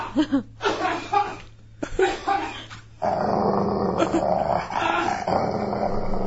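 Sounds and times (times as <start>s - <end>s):
laughter: 0.0s - 2.8s
dog growling: 3.0s - 6.2s.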